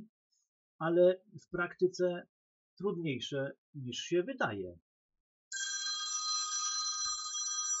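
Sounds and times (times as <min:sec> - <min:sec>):
speech: 0:00.8 - 0:04.8
telephone ringing with a bright electronic tone: 0:05.5 - 0:07.7.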